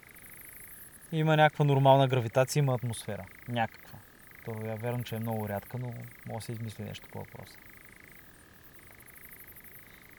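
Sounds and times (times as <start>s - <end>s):
faint night ambience: 0.0s - 10.1s
tree frog croaking in a pulsing trill: 0.0s - 10.1s
speech: 1.1s - 7.7s.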